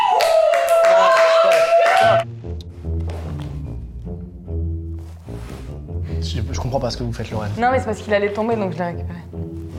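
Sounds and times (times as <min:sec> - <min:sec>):
audience clapping: 0:00.0 - 0:02.3
speech: 0:06.7 - 0:09.4.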